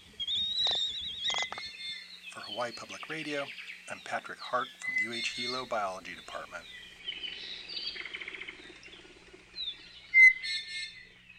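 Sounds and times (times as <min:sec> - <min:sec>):
Laysan albatross calls: 0:00.0 - 0:11.2
speech: 0:02.6 - 0:06.8.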